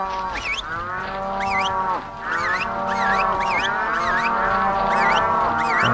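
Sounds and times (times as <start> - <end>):
herd of cattle mooing: 0.0 - 5.9
short rising whistle-like chirps: 2.4 - 5.9.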